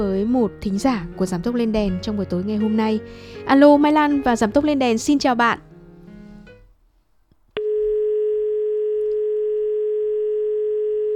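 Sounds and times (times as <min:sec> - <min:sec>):
speech: 0:00.0 - 0:05.7
telephone dial tone after a dropped call on a phone-in: 0:07.6 - 0:11.1.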